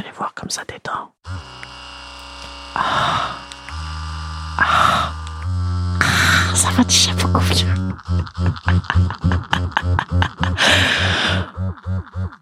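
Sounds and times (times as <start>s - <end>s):
speech: 0.0s - 1.8s, 6.6s - 12.4s
Magic Wand massage wand vibrator buzzing: 1.2s - 12.4s
loud breathy gasps and exhales: 2.8s - 3.4s, 4.6s - 5.2s, 6.0s - 6.6s, 10.5s - 11.6s
laughter: 6.0s - 11.6s.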